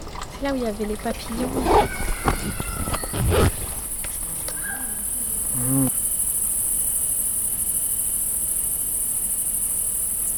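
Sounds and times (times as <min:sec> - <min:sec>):
speech: 0:00.4 - 0:02.7
crickets chirping: 0:00.4 - 0:10.3.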